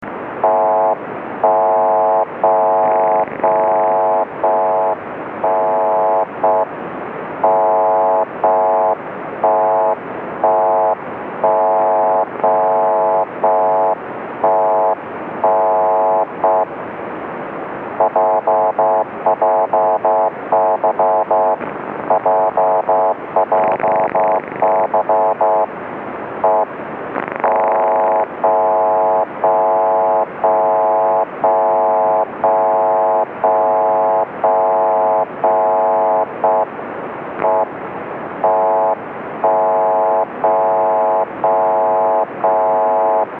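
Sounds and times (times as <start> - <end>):
JJY 40 kHz time signal tone: 0.4 - 6.7, 7.4 - 16.7, 18.0 - 25.7, 26.4 - 26.7, 27.4 - 36.7, 37.4 - 37.7, 38.4 - 43.3.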